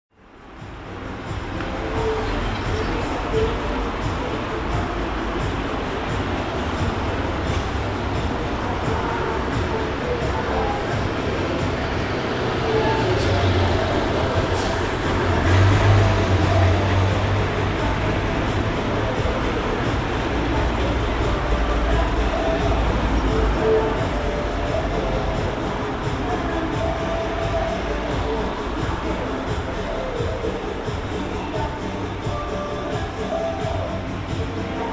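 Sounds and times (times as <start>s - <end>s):
music in the streets from a guesthouse balcony at San Luis and Laprida: 0.1s - 34.9s.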